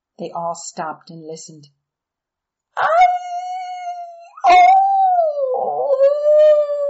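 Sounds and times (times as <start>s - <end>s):
speech: 0.2s - 1.8s, 2.8s - 3.0s
several dogs howling: 4.4s - 6.8s.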